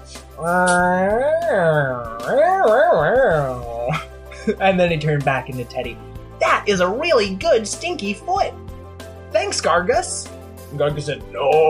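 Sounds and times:
speech: 0.4s - 2.8s, 4.5s - 8.6s, 9.4s - 11.6s
person's voice imitating a cat meowing: 0.4s - 3.9s.

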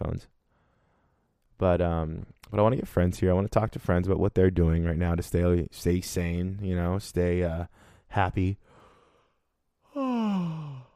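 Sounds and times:
speech: 1.6s - 8.7s
loud drawn-out person yawning: 9.9s - 10.9s.

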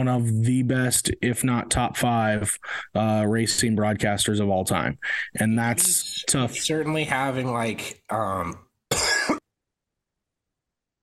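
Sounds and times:
speech: 0.0s - 8.6s
harsh cough from an unwell person bringing up phlegm: 8.9s - 9.5s.

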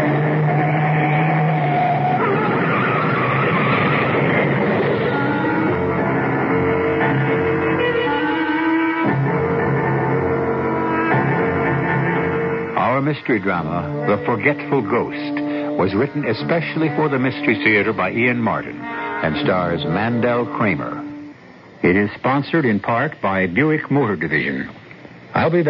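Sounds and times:
car tires skidding and screeching while swerving off the road to avoid a truck: 0.0s - 5.8s
car engine roaring while swerving off the road: 0.0s - 22.0s
speech: 13.2s - 21.0s, 21.8s - 24.8s, 25.4s - 25.6s.

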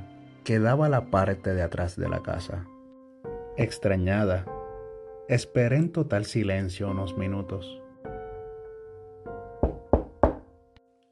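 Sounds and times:
speech: 0.5s - 2.7s, 3.6s - 4.6s, 5.3s - 7.8s
knocking on a door: 9.6s - 10.5s.

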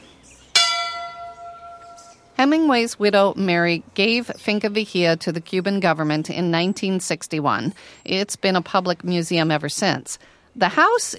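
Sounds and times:
front entrance bell of a former writer's home museum in Cuba: 0.6s - 2.3s
speech: 2.4s - 11.1s.

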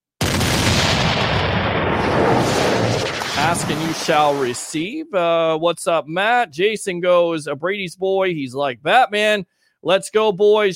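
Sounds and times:
continuous barrage of cannon fire booms: 0.2s - 4.7s
speech: 3.5s - 10.7s.

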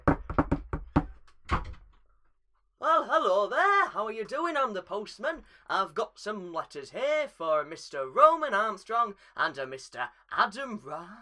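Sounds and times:
sharp knocks on a door: 0.0s - 1.8s
speech: 3.2s - 11.2s.

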